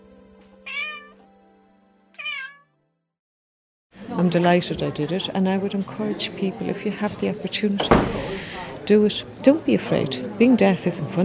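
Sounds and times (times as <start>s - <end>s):
cat meowing: 0.6s - 1.2s, 2.2s - 2.7s
speech: 4.2s - 11.2s.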